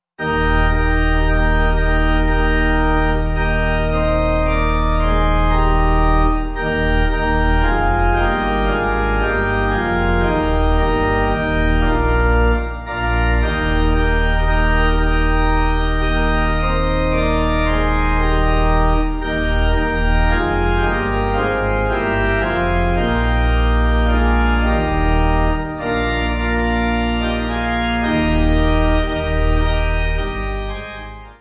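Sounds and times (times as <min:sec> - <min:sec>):
pipe organ playing a hymn tune in E-flat: 0:00.2 - 0:31.3.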